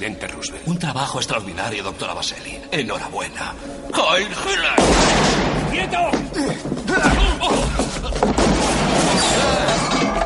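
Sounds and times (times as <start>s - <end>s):
speech: 0.0s - 10.0s
busy dense film soundtrack: 0.0s - 10.2s
sharp booming gunshots in a film scene: 4.8s - 5.9s, 8.2s - 9.9s.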